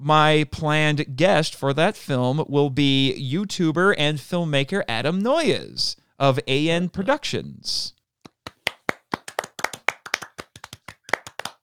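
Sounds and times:
speech: 0.0s - 8.0s
small round of applause: 8.3s - 11.6s.

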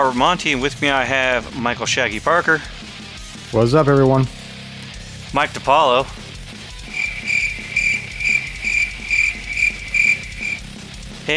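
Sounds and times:
speech: 0.0s - 2.8s, 3.5s - 4.4s, 5.3s - 6.2s
crickets chirping in trilling bursts: 6.8s - 10.7s.

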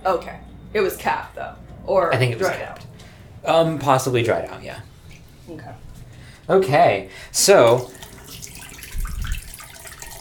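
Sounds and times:
speech: 0.0s - 4.9s, 5.5s - 5.9s, 6.5s - 8.1s
water running from a tap: 2.4s - 10.2s.

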